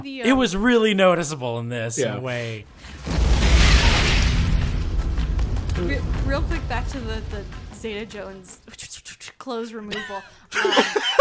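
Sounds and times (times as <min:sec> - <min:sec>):
speech: 0:00.0 - 0:03.2, 0:05.8 - 0:11.2
loud booming movie explosion: 0:02.6 - 0:08.9
laughter: 0:09.9 - 0:11.2.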